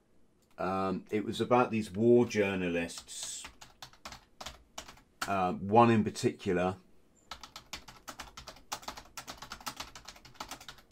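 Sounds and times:
speech: 0:00.6 - 0:03.5, 0:05.3 - 0:06.8
loud typing on a computer keyboard: 0:03.0 - 0:05.4, 0:07.3 - 0:10.9.

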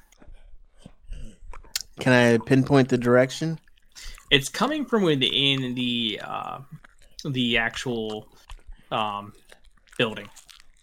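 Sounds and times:
wet munching and chewing on flesh: 0:00.0 - 0:02.0, 0:03.6 - 0:10.8
speech: 0:02.0 - 0:10.4.

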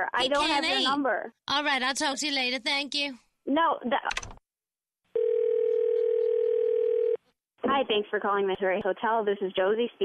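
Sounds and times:
speech: 0:00.0 - 0:04.4, 0:07.7 - 0:10.0
telephone dial tone: 0:05.2 - 0:07.2.

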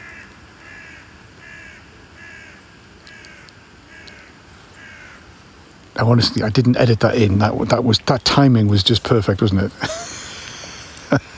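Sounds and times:
outdoor noise: 0:00.0 - 0:11.3
raven croaking: 0:00.0 - 0:11.3
speech: 0:06.0 - 0:10.1
laughter: 0:09.4 - 0:11.3.

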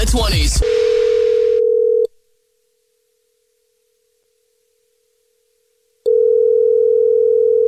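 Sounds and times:
speech: 0:00.1 - 0:00.9
telephone ringback tone: 0:00.6 - 0:02.1, 0:06.1 - 0:07.6.

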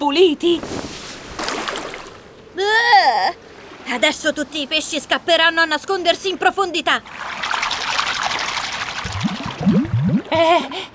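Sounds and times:
speech: 0:00.0 - 0:00.9, 0:02.8 - 0:07.5, 0:10.4 - 0:10.9
socks dropped from a hand into water: 0:00.6 - 0:02.2
water sloshing and splashing: 0:00.6 - 0:02.4, 0:06.9 - 0:10.4
bubbly rising gurgles of water: 0:08.9 - 0:10.5.

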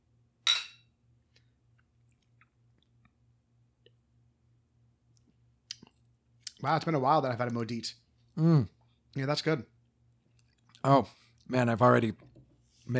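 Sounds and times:
beer glasses clinking in a toast: 0:00.5 - 0:00.8
speech: 0:06.6 - 0:09.8, 0:10.8 - 0:12.3.

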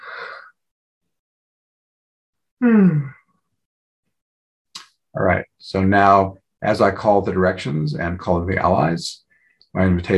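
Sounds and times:
speech: 0:02.6 - 0:03.1, 0:05.2 - 0:10.1
person yawning: 0:02.6 - 0:03.2.

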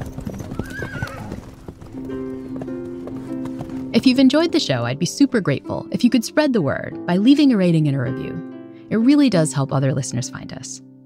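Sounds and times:
horse whinnying and neighing: 0:00.0 - 0:01.8
horse hooves clip-clopping: 0:00.0 - 0:04.6
speech: 0:04.0 - 0:11.0.

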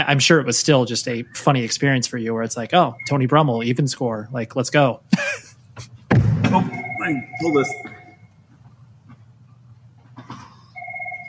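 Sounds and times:
speech: 0:00.0 - 0:05.9, 0:06.5 - 0:07.9
low hum: 0:00.0 - 0:11.2
phone ringing with an electronic two-tone trill: 0:06.5 - 0:08.3, 0:10.7 - 0:11.2.

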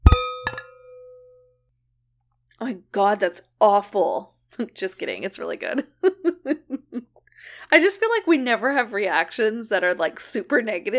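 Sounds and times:
wine glasses clinking in a toast: 0:00.0 - 0:01.4
speech: 0:02.6 - 0:06.7, 0:07.4 - 0:10.9.

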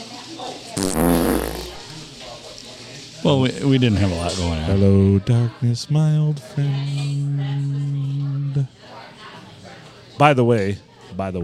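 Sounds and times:
quiet murmur: 0:00.0 - 0:11.4
speech: 0:00.4 - 0:01.2, 0:03.2 - 0:07.9, 0:08.5 - 0:08.8, 0:10.2 - 0:11.4
fart sound effect: 0:00.8 - 0:02.0.

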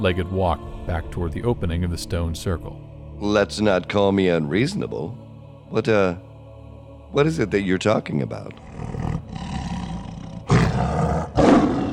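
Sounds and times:
speech: 0:00.0 - 0:06.3, 0:07.1 - 0:09.0
giant white tiger growling and roaring at night: 0:08.5 - 0:11.9.

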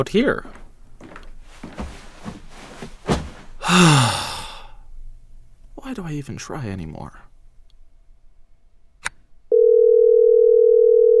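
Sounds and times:
speech: 0:00.0 - 0:00.6, 0:03.7 - 0:04.2, 0:05.9 - 0:07.2
steady mid-pitched phone line tone while a call is placed: 0:09.5 - 0:11.1.

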